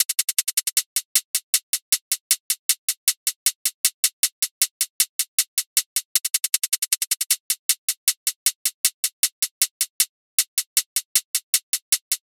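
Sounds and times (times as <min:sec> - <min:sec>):
hi-hat loop from a drum sample pack: 0:00.0 - 0:12.2.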